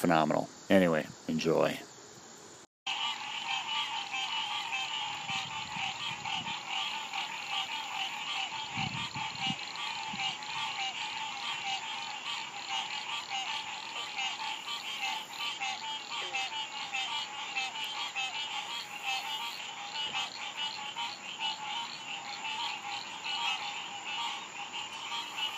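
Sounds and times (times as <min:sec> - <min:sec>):
speech: 0:00.0 - 0:01.9
chorus of many kinds of frogs croaking: 0:00.0 - 0:25.5.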